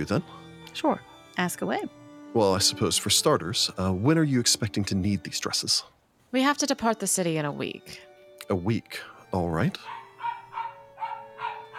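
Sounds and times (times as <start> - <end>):
speech: 0.0 - 10.0
small dachshund barking in yappy bursts: 9.8 - 11.7.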